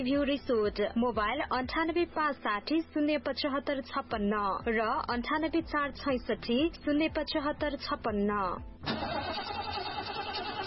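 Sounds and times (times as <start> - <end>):
speech: 0.0 - 9.6
car engine stalling with a worn-out battery: 8.8 - 10.6.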